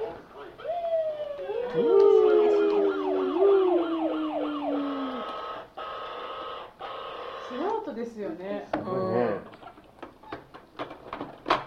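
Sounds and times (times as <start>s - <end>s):
fire engine siren passing: 0.6s - 7.7s
speech: 1.7s - 2.1s.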